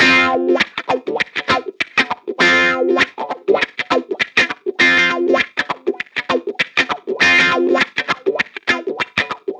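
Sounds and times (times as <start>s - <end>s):
nu jazz guitar loop in D major: 0.0s - 9.5s.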